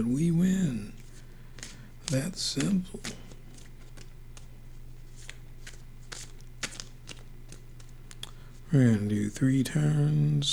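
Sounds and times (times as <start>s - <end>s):
speech: 0.0s - 1.0s, 2.1s - 3.2s, 8.7s - 10.5s
steady low hum: 0.0s - 10.5s
tarot cards being shuffled: 0.0s - 10.5s.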